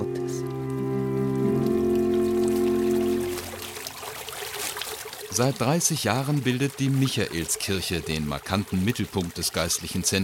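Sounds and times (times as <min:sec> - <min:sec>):
loud sustained musical tones: 0:00.0 - 0:04.3
water splashing and trickling from a bubbling fountain: 0:00.0 - 0:10.2
speech: 0:05.4 - 0:10.2.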